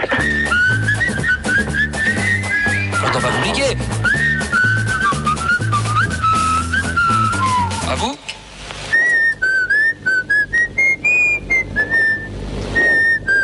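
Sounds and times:
person whistling a lilting melody: 0.0s - 7.9s, 8.9s - 13.4s
backing music with a repeating bass rhythm: 0.0s - 8.1s
voice speaking: 3.0s - 3.8s.

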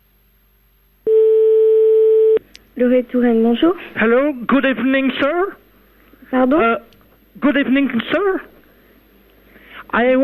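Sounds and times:
telephone ringing tone on a call: 1.1s - 2.4s
speech: 2.8s - 5.6s, 6.3s - 8.5s, 9.9s - 10.2s.

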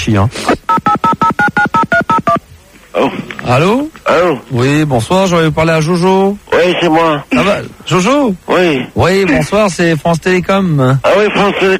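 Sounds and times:
speech: 0.1s - 0.6s, 3.0s - 11.7s
telephone number dialed as touch-tone beeps: 0.7s - 2.4s.

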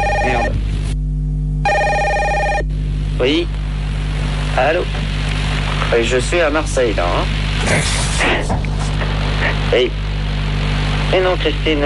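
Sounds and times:
telephone ringing with electronic warbling tone: 0.0s - 0.6s, 1.6s - 2.7s
steady low hum: 0.0s - 11.8s
speech: 3.2s - 3.6s, 4.6s - 5.0s, 5.9s - 8.8s, 9.4s - 10.0s, 11.1s - 11.8s.

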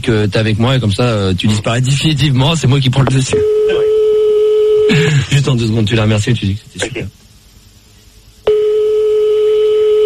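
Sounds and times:
speech: 0.0s - 3.9s, 4.9s - 7.2s
steady electronic telephone line tone during a call: 3.2s - 5.1s, 8.4s - 10.0s.

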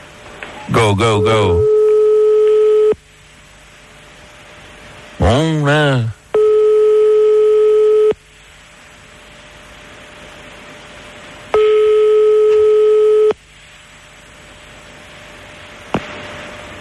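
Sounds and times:
telephone line hiss: 0.0s - 16.7s
speech: 0.7s - 1.7s, 5.3s - 6.2s
telephone ringback tones as a call is placed: 1.4s - 3.0s, 6.4s - 8.2s, 11.6s - 13.4s.

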